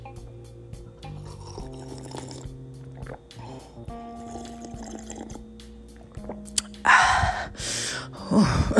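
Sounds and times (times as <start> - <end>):
quiet steady hum: 0.0 - 8.7
person sipping water: 1.2 - 6.8
breathy loud exhales after a drink: 6.9 - 8.7.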